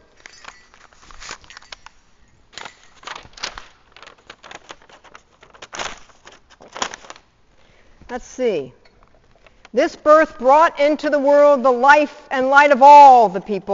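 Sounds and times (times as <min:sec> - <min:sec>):
paper scroll crinkling and rustling as it is unrolled and handled: 0:00.0 - 0:07.3
speech: 0:08.1 - 0:08.8, 0:09.7 - 0:13.7.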